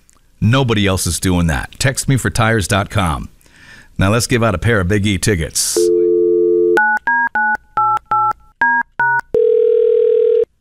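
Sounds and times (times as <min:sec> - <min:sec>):
speech: 0:00.4 - 0:03.4, 0:04.0 - 0:06.0
phone line dial tone: 0:05.9 - 0:06.8, 0:09.3 - 0:10.5
steady phone ringing tone: 0:05.9 - 0:08.0, 0:08.7 - 0:10.5.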